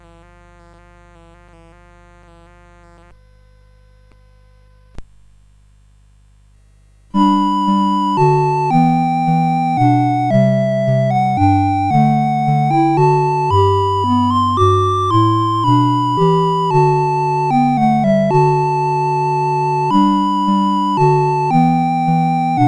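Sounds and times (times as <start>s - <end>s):
chiptune music on CSG8580R5 chip: 7.2s - 22.6s.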